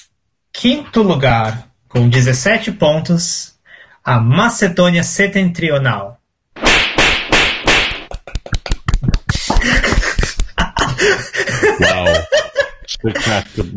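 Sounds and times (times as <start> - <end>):
speech: 0.0 - 6.2, 13.0 - 13.7
whip cracking: 6.6 - 8.2
laughter: 8.1 - 13.7.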